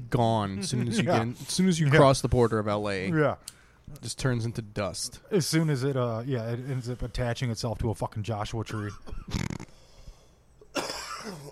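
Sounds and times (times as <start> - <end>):
speech: 0.1 - 9.5
person coughing: 8.7 - 9.6, 10.7 - 11.5.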